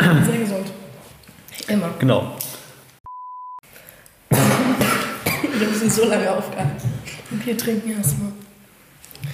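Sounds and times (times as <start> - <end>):
speech: 1.7 - 2.5, 5.6 - 8.4
short steady beep tone: 3.0 - 3.6
loud harsh coughing: 4.3 - 6.0.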